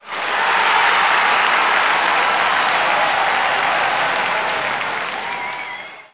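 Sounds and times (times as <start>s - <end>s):
crowd clapping in a hockey stadium: 0.0s - 6.1s.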